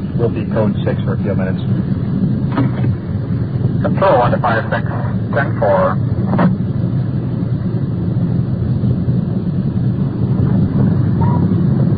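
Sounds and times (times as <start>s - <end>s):
police car engine rumble driving into circular driveway of a bar: 0.0s - 11.9s
road noise of police car: 0.0s - 11.9s
speech: 0.2s - 2.8s, 3.8s - 6.6s.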